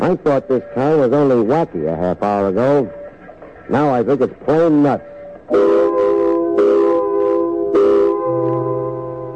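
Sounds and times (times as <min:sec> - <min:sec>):
speech: 0:00.0 - 0:03.0, 0:03.7 - 0:06.0
loud factory quitting-time whistle blaring: 0:05.5 - 0:09.3.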